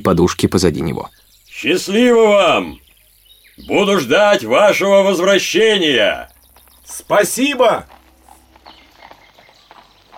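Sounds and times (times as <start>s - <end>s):
speech: 0.0s - 2.8s, 3.6s - 6.3s, 6.9s - 8.0s
low hiss: 0.0s - 9.0s
hooves of a horse ambling along a forest path: 6.2s - 10.1s.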